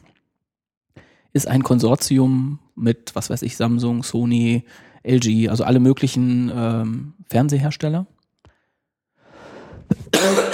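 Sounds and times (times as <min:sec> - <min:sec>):
speech: 0:01.3 - 0:08.1
person coughing: 0:09.9 - 0:10.5.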